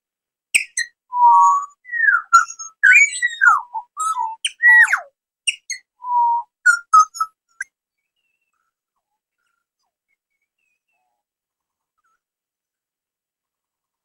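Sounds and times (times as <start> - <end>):
small birds singing on a picnic table: 0.5 - 12.3.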